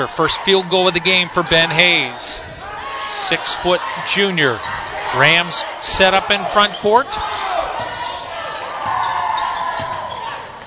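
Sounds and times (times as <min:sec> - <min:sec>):
speech: 0:00.0 - 0:07.4
crowd noise at a basketball game: 0:00.0 - 0:10.6
basketball dribbled on the court: 0:08.8 - 0:10.6.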